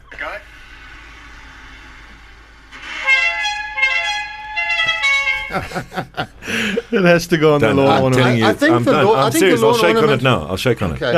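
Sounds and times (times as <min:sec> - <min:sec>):
rumbling: 0:00.0 - 0:08.9
multi-tone bus horn blaring: 0:02.8 - 0:05.8
laughter: 0:05.3 - 0:10.4
speech: 0:05.5 - 0:11.1.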